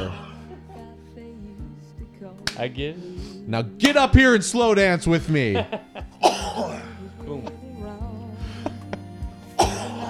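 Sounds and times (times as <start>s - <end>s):
quiet music with soft low beat: 0.0s - 10.0s
speech: 2.2s - 6.7s
laughter: 5.4s - 6.2s
cough into microphone: 6.2s - 6.9s, 9.6s - 10.0s.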